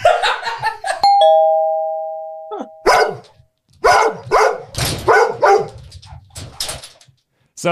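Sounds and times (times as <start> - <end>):
doorbell chiming: 1.0 - 3.0
dogs barking: 2.8 - 5.9.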